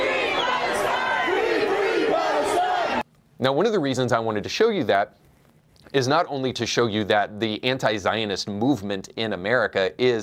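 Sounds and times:
large crowd shouting a rhythmic protest chant: 0.0 - 3.0
speech: 3.4 - 5.2, 5.9 - 10.2.

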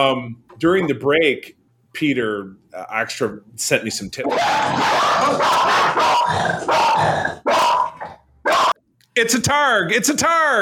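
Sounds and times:
speech: 0.0 - 7.8, 9.2 - 10.6
dog barking gruffly in a room: 4.3 - 8.8.

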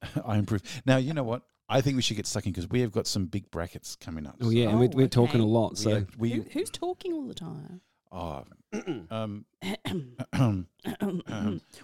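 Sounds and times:
speech: 0.3 - 11.8
person clearing throat: 8.8 - 11.7.

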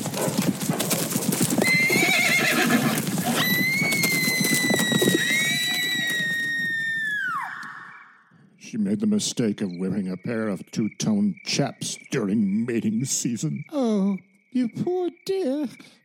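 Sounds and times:
palomino horses' clip-clopping hooves galloping: 0.0 - 7.7
herd of palomino horses neighing: 0.0 - 8.2
speech: 9.0 - 16.0.

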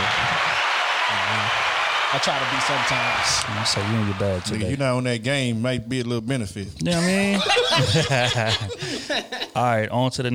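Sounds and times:
applause: 0.0 - 4.8
speech: 1.5 - 10.3
laughter: 6.9 - 9.6.

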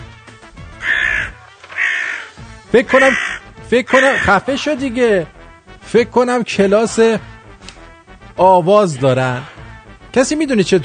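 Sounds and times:
crows cawing: 0.7 - 4.8
speech: 2.7 - 7.3, 8.4 - 9.5, 10.1 - 10.8.

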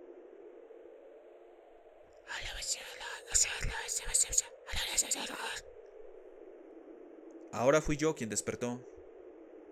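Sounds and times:
faint low hum: 0.0 - 9.6
hushed breathy whispering voices: 2.3 - 5.6
speech: 2.3 - 5.8, 7.6 - 9.0.

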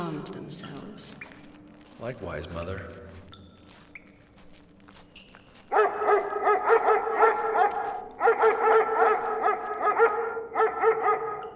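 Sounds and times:
speech: 0.2 - 1.4, 2.0 - 3.2, 5.7 - 7.0
two-headed guard dog barking: 5.7 - 11.5.

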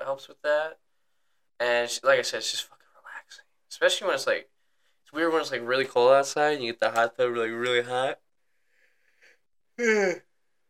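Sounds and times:
speech: 0.1 - 0.8, 1.6 - 4.5, 5.1 - 8.2, 9.8 - 10.3
voiced breathy yawn: 9.8 - 10.3.

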